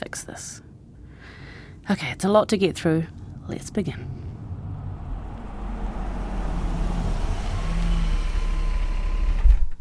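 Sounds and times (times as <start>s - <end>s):
wind: 0.0s - 9.7s
speech: 0.2s - 0.6s, 1.9s - 4.2s
faint traffic: 2.0s - 9.4s
steady low rumble of car park heard from inside a car: 2.7s - 9.4s.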